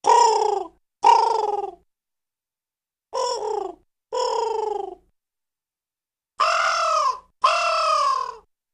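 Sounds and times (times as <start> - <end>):
crow cooing: 0.0 - 1.8, 3.2 - 5.0, 6.4 - 8.5
crow cawing: 6.4 - 8.4.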